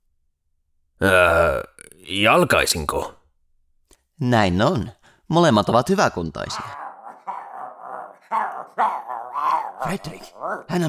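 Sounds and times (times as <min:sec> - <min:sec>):
speech: 0:01.0 - 0:03.2, 0:04.2 - 0:06.8, 0:09.8 - 0:10.8
dog barking and whining: 0:06.5 - 0:10.7.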